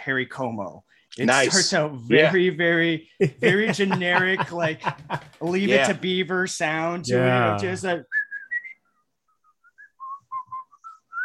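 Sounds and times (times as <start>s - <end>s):
speech: 0.0s - 8.2s
laughter: 3.2s - 6.1s
person whistling a tune from an old song: 8.1s - 11.2s.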